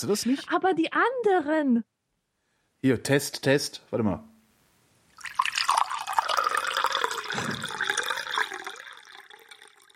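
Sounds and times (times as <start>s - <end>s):
speech: 0.0s - 1.9s, 2.8s - 4.3s
water poured into a glass: 5.1s - 9.9s.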